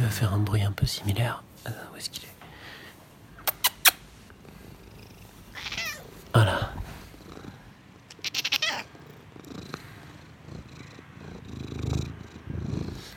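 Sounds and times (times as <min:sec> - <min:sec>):
speech: 0:00.1 - 0:02.4, 0:06.3 - 0:06.7
cat purring inside a therapist's office: 0:04.2 - 0:13.1.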